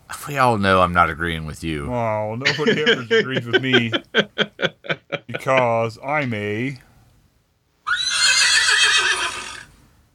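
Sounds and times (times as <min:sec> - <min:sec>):
speech: 0:00.1 - 0:04.8, 0:05.4 - 0:06.9
laughter: 0:02.4 - 0:05.8
horse whinnying: 0:07.8 - 0:09.7.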